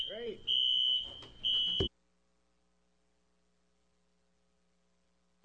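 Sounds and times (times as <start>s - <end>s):
shrill steady fire alarm tone during a public hearing: 0.0s - 1.9s.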